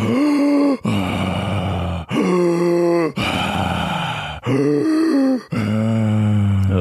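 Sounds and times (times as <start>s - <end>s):
person imitating Kussmaul breathing fast and deep: 0.8s - 6.6s.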